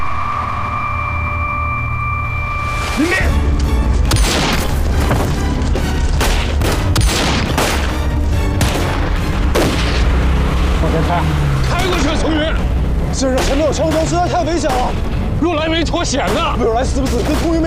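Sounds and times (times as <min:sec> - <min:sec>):
steady rumbling background: 0:00.0 - 0:16.4
gunshots: 0:04.1 - 0:05.4, 0:06.2 - 0:10.2, 0:13.3 - 0:15.0, 0:16.2 - 0:17.6.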